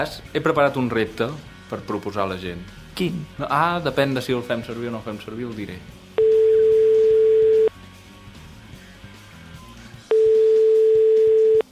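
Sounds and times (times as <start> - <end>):
speech: 0.0 - 6.0
ringback tones of an outgoing telephone call: 6.2 - 7.7, 10.1 - 11.7.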